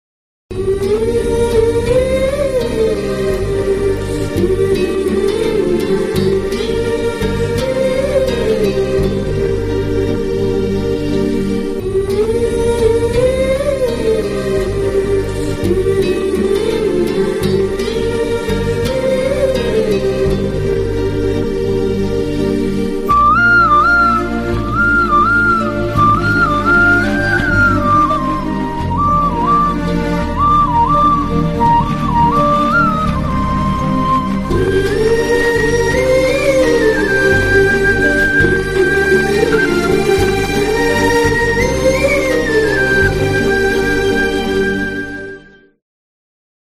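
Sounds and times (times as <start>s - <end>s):
sad flute instrumental: 0.6s - 45.8s.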